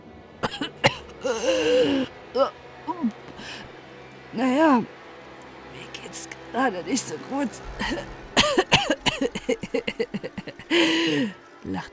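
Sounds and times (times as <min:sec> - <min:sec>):
voice acting out a man's wet sputtering coughs: 0:00.4 - 0:01.1, 0:07.8 - 0:10.0
speech: 0:01.2 - 0:03.2, 0:04.4 - 0:05.0, 0:06.5 - 0:11.9
laughter: 0:07.8 - 0:11.2.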